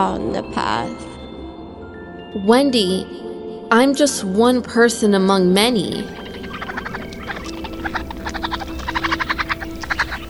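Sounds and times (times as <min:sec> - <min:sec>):
speech: 0:00.0 - 0:01.1, 0:02.3 - 0:06.2
raccoons chittering and squealing outside: 0:05.9 - 0:10.2.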